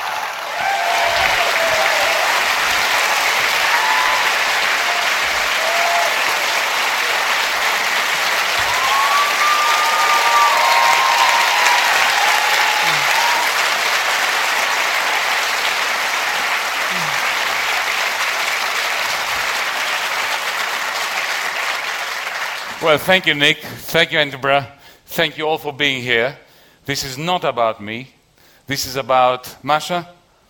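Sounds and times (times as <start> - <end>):
faint cheers from crowd: 0.0 - 7.3, 8.5 - 13.8
large audience applauding at a special event in Edinburgh: 0.0 - 23.0
speech: 22.9 - 30.2.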